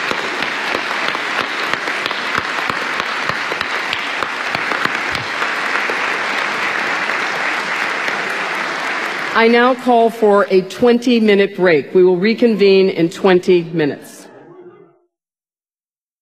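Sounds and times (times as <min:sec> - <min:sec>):
sizable audience applauding: 0:00.0 - 0:09.6
speech: 0:09.4 - 0:14.1.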